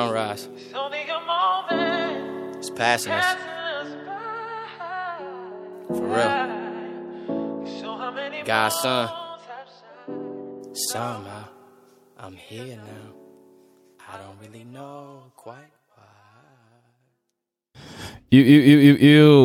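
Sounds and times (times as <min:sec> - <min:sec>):
speech: 0:00.0 - 0:01.9, 0:02.6 - 0:03.5, 0:05.9 - 0:06.6, 0:08.5 - 0:09.2, 0:10.8 - 0:11.6, 0:12.2 - 0:13.2, 0:14.1 - 0:15.8, 0:17.8 - 0:19.4
hip-hop song with sung vocals: 0:00.0 - 0:05.3, 0:05.9 - 0:11.6, 0:14.0 - 0:15.7.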